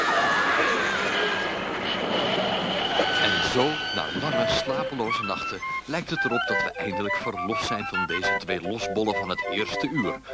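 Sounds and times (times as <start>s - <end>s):
train rumbling past with wheel and rail noise: 0.0s - 6.5s
faint whining tones: 0.0s - 7.1s
speech: 3.6s - 10.3s.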